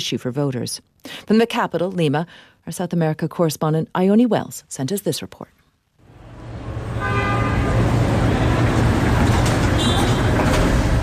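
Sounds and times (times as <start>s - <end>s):
speech: 0.0s - 5.6s
steady bus and traffic engine rumble: 6.0s - 11.0s
horns tooting in busy street traffic: 6.1s - 11.0s.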